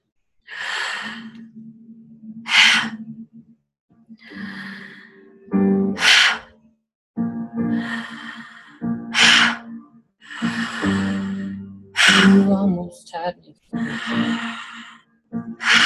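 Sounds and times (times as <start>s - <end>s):
deep inhale and relaxed exhale breathing: 0.5s - 3.3s, 4.2s - 6.6s, 7.6s - 12.6s, 13.8s - 15.8s.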